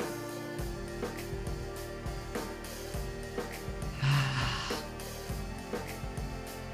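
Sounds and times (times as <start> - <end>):
calm sustained music: 0.0 - 6.7
deep breathy exhale through the mouth during a three-part breathing exercise: 3.9 - 5.1.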